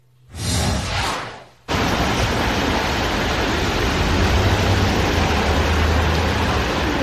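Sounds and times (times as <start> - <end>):
brief whoosh: 0.3 - 2.7
heavy rain in city streets: 1.7 - 7.0
rushing floodwater in city streets: 1.7 - 7.0.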